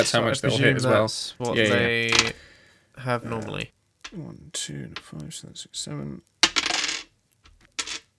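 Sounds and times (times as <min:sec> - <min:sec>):
speech: 0:00.0 - 0:06.3
two six-sided dice clattering across a hard tabletop: 0:06.4 - 0:08.1.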